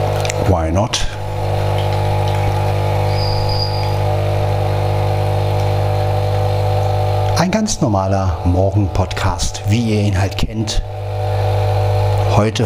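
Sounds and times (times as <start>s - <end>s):
water gurgling in a coffee machine: 0.0s - 12.2s
coffee machine pump drone: 0.0s - 12.6s
speech: 0.5s - 1.1s, 7.4s - 11.0s, 12.4s - 12.6s
faint high whine: 1.1s - 11.0s.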